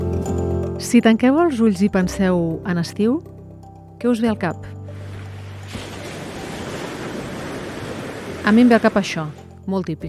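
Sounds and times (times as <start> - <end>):
speech: 0.8 - 3.3, 4.0 - 4.8, 8.5 - 10.0
sea waves washing onto a shore: 4.9 - 9.6.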